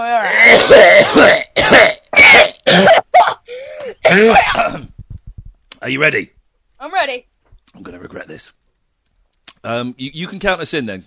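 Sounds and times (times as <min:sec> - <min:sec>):
speech: 0:00.0 - 0:01.8, 0:05.9 - 0:08.6, 0:09.6 - 0:11.0
person clearing throat: 0:00.4 - 0:03.1, 0:04.0 - 0:04.9
person coughing: 0:00.4 - 0:04.9.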